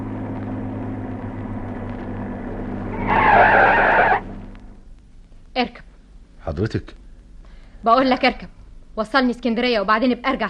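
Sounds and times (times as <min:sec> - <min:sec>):
low car engine rumble: 0:00.0 - 0:05.3
car tires screeching as it skids to a stop: 0:02.0 - 0:04.5
speech: 0:06.6 - 0:07.0, 0:07.8 - 0:10.4.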